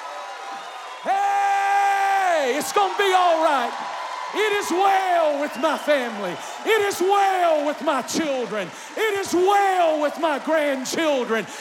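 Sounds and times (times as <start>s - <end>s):
audience cheering and shouting: 0.0s - 11.5s
person whooping: 1.0s - 3.4s
speech: 2.6s - 11.5s.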